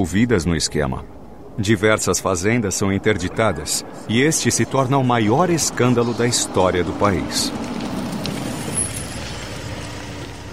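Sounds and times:
speech: 0.0s - 7.8s
car engine rumbling as the car pulls up in front of a house: 0.0s - 10.5s
high car brake squeal: 5.4s - 10.5s.

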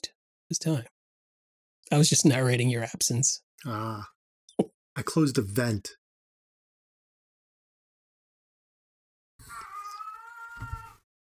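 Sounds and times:
speech: 0.5s - 0.9s, 1.9s - 6.0s
cat meowing loudly: 9.4s - 11.0s.

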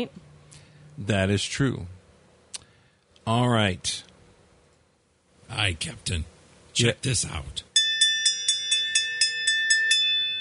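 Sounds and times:
speech: 0.0s - 0.2s, 1.0s - 2.0s, 3.2s - 4.1s, 5.5s - 7.7s
hand bell ringing: 7.8s - 10.3s.

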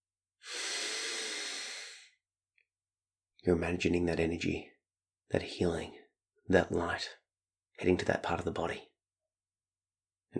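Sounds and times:
deep inhalation during a guided relaxation exercise: 0.4s - 2.2s
speech: 3.4s - 4.7s, 5.3s - 7.2s, 7.8s - 8.9s.

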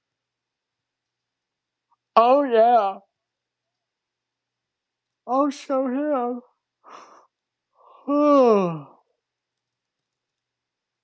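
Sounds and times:
speech: 2.2s - 3.1s, 5.3s - 7.1s, 8.1s - 8.9s
person yawning: 8.0s - 9.0s.

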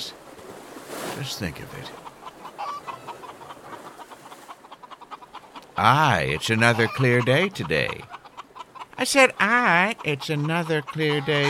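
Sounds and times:
speech: 1.2s - 2.1s, 5.8s - 8.2s, 9.0s - 11.4s
chickens clucking: 1.2s - 11.4s
high chicken squawk: 1.9s - 9.0s, 10.0s - 11.4s.

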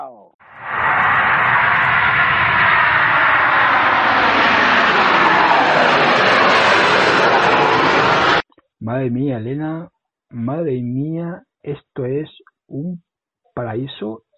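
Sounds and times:
airplane engine roar during takeoff: 0.4s - 8.4s
speech: 8.9s - 14.2s.

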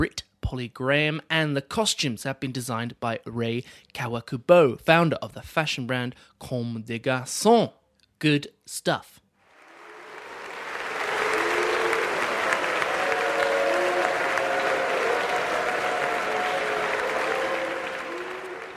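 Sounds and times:
speech: 0.0s - 9.2s
audience booing at a piano competition: 9.5s - 18.7s
clapping-like noise: 9.5s - 18.7s.

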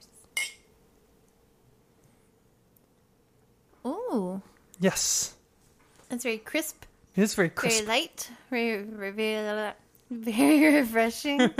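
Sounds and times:
two glasses clinking in a toast: 0.4s - 0.7s
speech: 3.8s - 5.4s, 6.1s - 11.5s.

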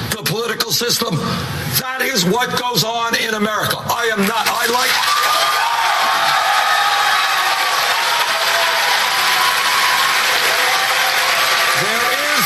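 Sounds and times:
speech: 0.2s - 5.5s
large debate audience applauding: 4.9s - 12.4s.

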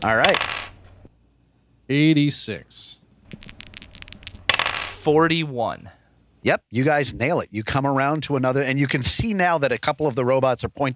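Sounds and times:
speech: 0.0s - 0.6s, 1.9s - 3.0s, 5.0s - 10.9s
percentile dice rattling across a hard tabletop: 0.0s - 1.0s, 3.3s - 5.2s.

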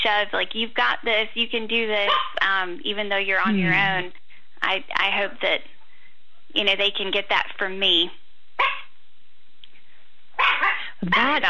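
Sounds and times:
speech: 0.0s - 5.7s, 6.5s - 8.7s, 11.0s - 11.4s
dog barking at home: 2.1s - 2.4s, 8.6s - 9.0s, 10.4s - 11.4s.

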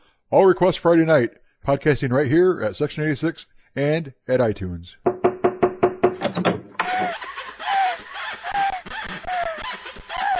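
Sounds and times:
speech: 0.3s - 5.2s
sharp knocks on a door: 5.0s - 7.2s
snickering laughter: 6.8s - 10.3s.

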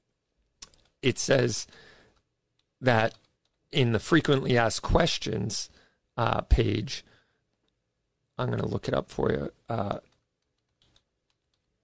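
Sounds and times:
speech: 1.0s - 1.9s, 2.8s - 7.1s, 8.4s - 10.1s
typing on a computer keyboard: 2.6s - 3.6s, 10.0s - 11.8s.

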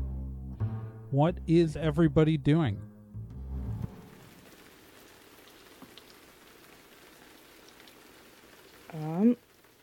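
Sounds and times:
speech: 1.1s - 2.9s
rain pattering on a warehouse roof: 3.9s - 9.8s.

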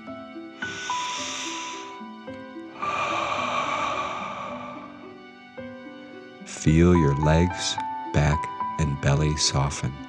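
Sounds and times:
soft sustained music tones: 0.0s - 10.0s
deep breath in through the nose and out through the mouth: 0.6s - 6.3s
speech: 6.6s - 10.0s.

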